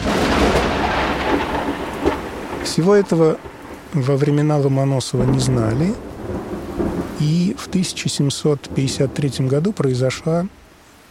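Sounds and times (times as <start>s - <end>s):
deep thunder rolling: 0.0s - 10.5s
steady rain hissing: 0.0s - 11.0s
speech: 2.8s - 6.1s, 7.2s - 11.0s.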